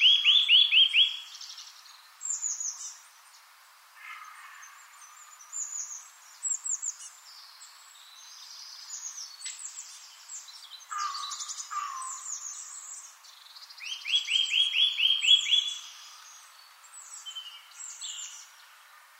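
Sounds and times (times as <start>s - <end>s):
other birds calling in the background: 0.0s - 19.1s.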